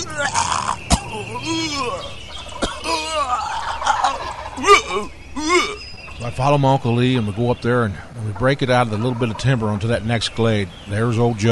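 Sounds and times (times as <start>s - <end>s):
person mimicking a turkey's gobble during turkey-hunting time: 0.0s - 5.8s
speech: 4.9s - 5.2s, 6.3s - 11.5s.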